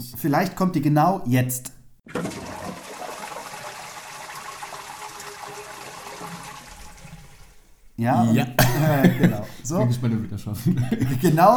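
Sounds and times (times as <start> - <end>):
speech: 0.0 - 2.3, 8.0 - 11.5
water gurgling and trickling in a toilet: 2.0 - 8.0
toilet flush: 2.1 - 7.9
laughter: 8.2 - 11.5.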